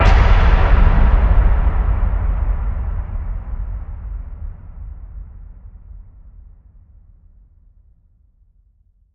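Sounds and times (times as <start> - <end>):
ambient boom hit: 0.0 - 6.3.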